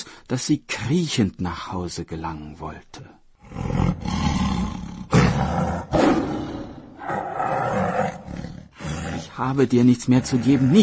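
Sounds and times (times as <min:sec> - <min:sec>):
speech: 0:00.3 - 0:04.3, 0:09.4 - 0:10.8
tiger roaring in deep rumbling bursts: 0:03.4 - 0:09.3.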